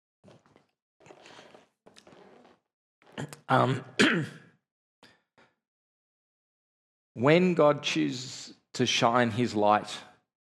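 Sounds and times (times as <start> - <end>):
person clearing throat: 3.2 - 4.4
person coughing: 3.2 - 4.4
speech: 3.2 - 4.4, 7.2 - 10.1.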